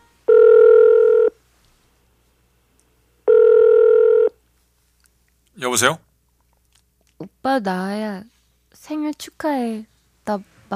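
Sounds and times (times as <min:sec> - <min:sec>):
buzzy telephone ringing tones: 0:00.0 - 0:01.4, 0:03.3 - 0:04.4
speech: 0:05.6 - 0:06.1, 0:07.4 - 0:10.7.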